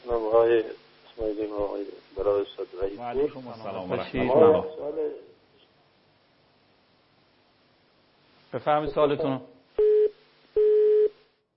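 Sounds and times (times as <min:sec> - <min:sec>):
speech: 0:00.1 - 0:05.3, 0:08.5 - 0:09.9
telephone busy tone after a dropped call: 0:09.8 - 0:11.2.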